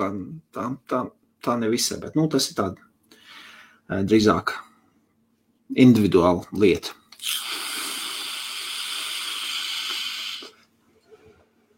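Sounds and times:
speech: 0.0 - 2.9, 3.9 - 4.7, 5.7 - 7.6
airy hiss of vapor from a vape device with airflow fully open: 7.2 - 10.7.

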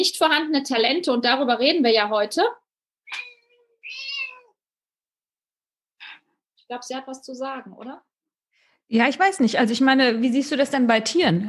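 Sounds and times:
speech: 0.0 - 3.3, 6.7 - 8.1, 8.9 - 11.4
cat meowing: 3.1 - 4.6.

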